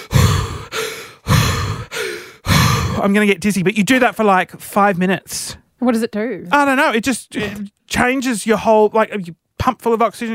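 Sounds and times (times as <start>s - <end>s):
deep forceful Wim Hof technique breathing: 0.0s - 3.0s
speech: 3.0s - 10.3s.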